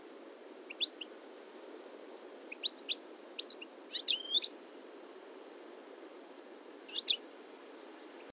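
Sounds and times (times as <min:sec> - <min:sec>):
background hiss: 0:00.0 - 0:08.3
European goldfinch Carduelis carduelis calls: 0:00.7 - 0:01.8, 0:02.5 - 0:04.5, 0:06.4 - 0:07.2.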